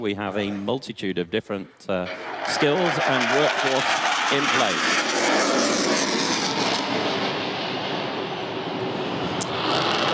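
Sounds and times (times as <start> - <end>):
speech: 0.0 - 5.2
airshow plane jet engine roaring banking across Mindil Beach: 2.1 - 10.1.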